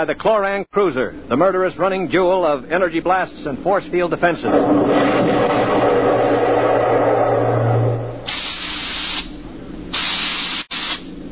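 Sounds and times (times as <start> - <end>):
speech: 0.0 - 5.6
low droning rumble: 4.4 - 8.5
bursts of hissing steam through a spaceship's steering tubes: 4.5 - 9.3.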